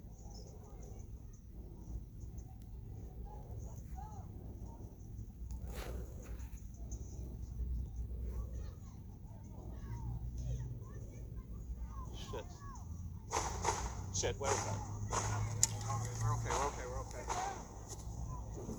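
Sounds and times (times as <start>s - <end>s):
birds chirping: 0.0s - 18.7s
children's voices outdoors: 0.0s - 18.7s
low traffic rumble: 0.0s - 18.7s
sharp gunshot cracks: 13.3s - 18.7s
speech: 14.2s - 15.3s.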